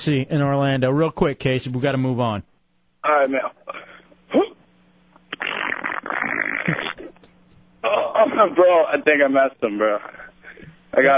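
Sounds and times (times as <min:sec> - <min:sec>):
speech: 0:00.0 - 0:04.5, 0:07.8 - 0:10.2, 0:10.9 - 0:11.1
caller's mouth-made fart imitation over a phone line: 0:05.2 - 0:07.3.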